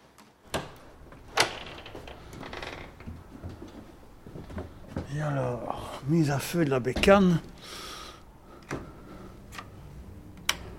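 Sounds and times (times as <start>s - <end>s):
door opening with sharp clunks: 0.5s - 3.2s
speech: 5.1s - 7.8s.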